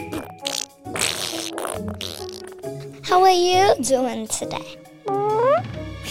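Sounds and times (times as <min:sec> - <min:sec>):
farts: 0:00.0 - 0:02.8
speech: 0:03.1 - 0:04.8.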